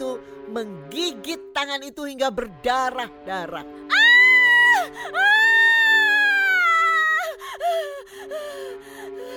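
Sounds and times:
speech: 0.5 - 3.9
girl screaming in long shrill wails: 3.9 - 7.4
girl's short broken sobbing screams: 3.9 - 7.8.

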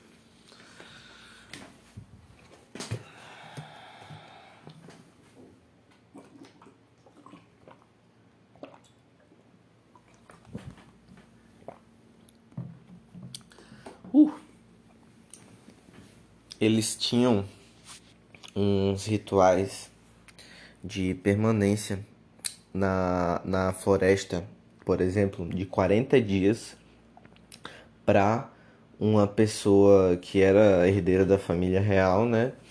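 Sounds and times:
person sipping water and swallowing: 2.4 - 14.1, 27.1 - 27.8
speech: 16.6 - 17.6, 18.6 - 19.9, 20.8 - 22.1, 22.8 - 26.8, 28.1 - 32.6.

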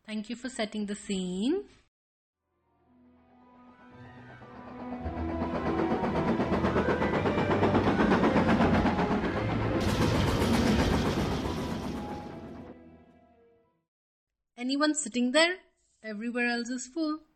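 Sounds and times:
speech: 0.1 - 1.8, 14.6 - 17.3
train rumbling on rails: 4.1 - 12.7
rapid rhythmic clatter of train on rails: 5.1 - 12.3.

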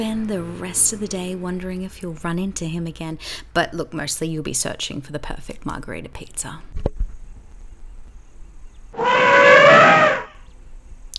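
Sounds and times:
speech: 0.0 - 7.0
grey elephant trumpeting on the way to a watering hole in Kruger National Park: 9.0 - 10.4.

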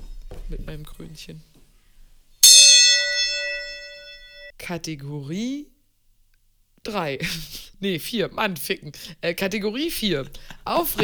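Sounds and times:
speech: 0.5 - 1.6, 4.7 - 5.7, 6.8 - 11.0
gong struck and ringing: 2.4 - 4.5
laughter: 10.0 - 11.0.

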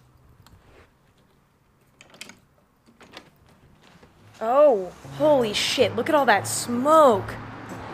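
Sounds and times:
hotel room door latch and handle rattling: 1.8 - 4.2
speech: 4.4 - 7.4.

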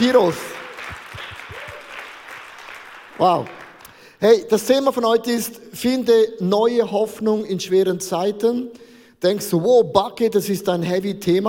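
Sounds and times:
speech: 0.0 - 0.5, 3.2 - 3.6, 4.2 - 11.4
audience applauding: 0.0 - 4.0.

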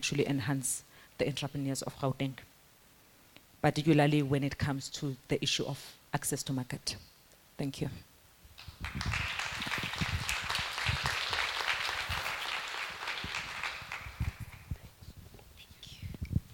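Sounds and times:
speech: 0.0 - 2.5, 3.6 - 8.1, 8.8 - 9.3
crowd applauding: 8.6 - 14.8.

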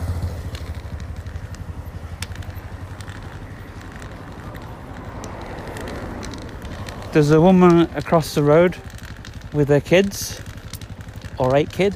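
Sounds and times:
motorcycle engine rumbling: 0.0 - 11.9
outdoor noise: 0.0 - 11.9
faint clicks: 0.2 - 11.9
speech: 7.1 - 8.9, 9.5 - 10.5, 11.4 - 11.9.

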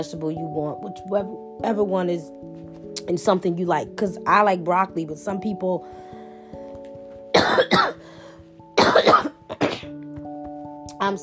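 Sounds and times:
speech: 0.0 - 6.0, 11.1 - 11.2
harsh coughs from a person getting over a cold: 7.3 - 8.0, 8.8 - 10.0.

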